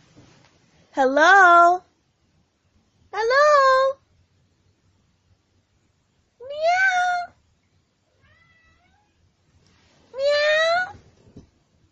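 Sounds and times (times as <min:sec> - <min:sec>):
speech: 0:01.0 - 0:01.9, 0:03.1 - 0:04.0
cat meowing: 0:08.1 - 0:09.2, 0:10.1 - 0:11.0.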